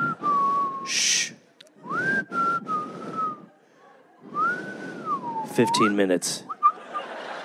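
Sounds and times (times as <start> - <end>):
person whistling a signal call for a meeting: 0.0 - 3.5, 4.4 - 6.8
speech: 0.9 - 1.3, 5.6 - 6.5
laughter: 6.5 - 7.4.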